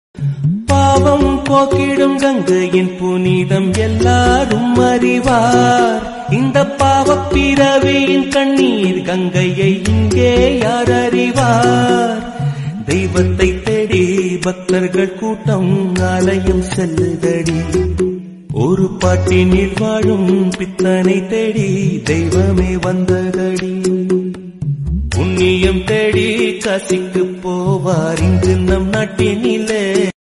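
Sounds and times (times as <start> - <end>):
sad Tamil song ringtone: 0.2 - 24.6, 25.2 - 30.1.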